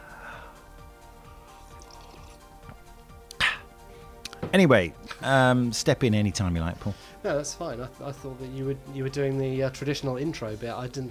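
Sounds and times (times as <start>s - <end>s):
person drinking water: 0.0s - 4.5s
speech: 4.5s - 11.0s.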